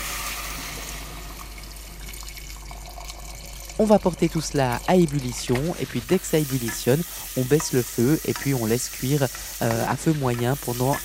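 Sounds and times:
broth poured over celery and potato cubes in a pan: 0.0 - 11.0
speech: 3.8 - 11.0.

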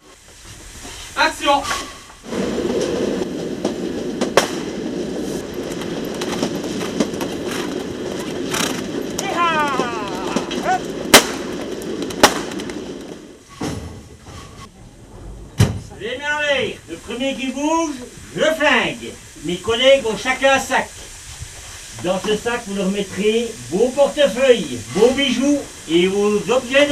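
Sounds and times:
braking train heavy rolling rumble: 0.0 - 26.9
speech: 1.2 - 1.9, 17.3 - 20.9, 22.0 - 26.9
train brake squeal: 1.6 - 2.2.

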